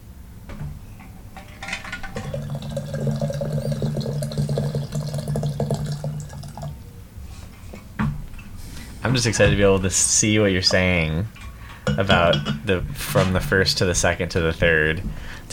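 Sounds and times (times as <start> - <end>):
small amount of water pouring into an empty small gaiwan for tea: 1.6 - 6.8
speech: 9.1 - 11.4, 12.0 - 15.5.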